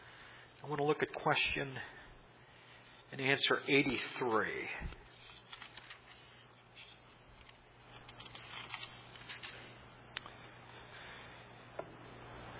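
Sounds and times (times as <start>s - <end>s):
faint low hum: 0.0s - 12.5s
speech: 0.6s - 2.0s, 3.1s - 5.2s
many hymnal pages being turned: 3.5s - 9.9s.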